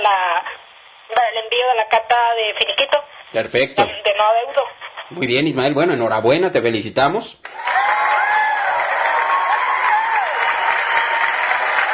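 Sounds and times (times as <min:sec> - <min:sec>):
speech: 0:01.3 - 0:07.8
crowd applauding: 0:07.4 - 0:11.9
faint cheers or whistles: 0:07.5 - 0:11.9.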